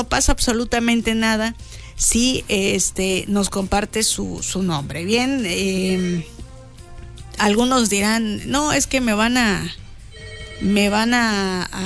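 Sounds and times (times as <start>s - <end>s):
speech: 0.0s - 6.4s, 7.4s - 9.8s, 10.6s - 11.8s
telephone ringtone signalling an incoming call: 10.1s - 11.2s.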